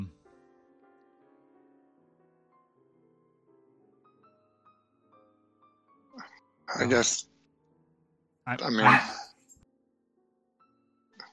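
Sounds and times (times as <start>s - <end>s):
speech: 6.8s - 7.3s, 8.5s - 9.2s
dog yelping: 8.7s - 9.3s.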